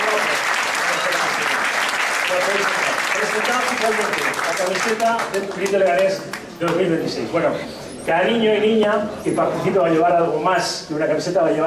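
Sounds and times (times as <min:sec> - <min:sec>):
audience applause: 0:00.0 - 0:06.1
speech: 0:03.4 - 0:11.6.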